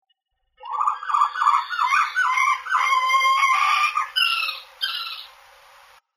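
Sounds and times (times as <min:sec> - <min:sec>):
owl warbling: 0:00.6 - 0:05.4.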